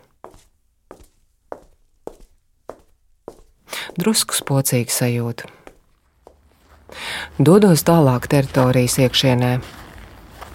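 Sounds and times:
footsteps on a hard floor in an empty office-like building: 0.0 - 7.0
speech: 3.9 - 5.6, 7.4 - 9.8.

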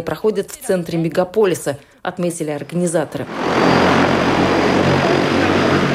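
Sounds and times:
speech: 0.0 - 4.5
pilotless passenger air taxi drone rotors whirring in flight: 3.1 - 5.9.

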